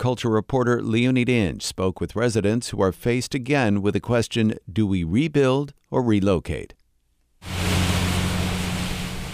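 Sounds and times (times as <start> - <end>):
speech: 0.0 - 6.8
water rushing back into a river as it is pumped out of flooded streets: 7.4 - 9.3.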